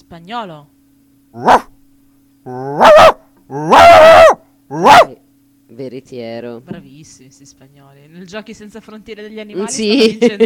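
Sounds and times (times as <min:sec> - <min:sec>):
speech: 0:00.1 - 0:01.7, 0:02.4 - 0:04.0, 0:05.9 - 0:10.4
small dog yapping, sharp and high-pitched: 0:01.4 - 0:01.8, 0:02.5 - 0:05.2.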